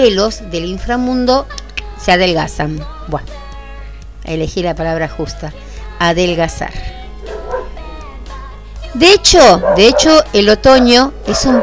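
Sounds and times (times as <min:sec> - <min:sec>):
speech: 0:00.0 - 0:03.4, 0:04.2 - 0:07.0, 0:08.9 - 0:11.6
steady low hum: 0:00.0 - 0:11.6
dogs barking: 0:07.2 - 0:07.8, 0:09.5 - 0:11.6.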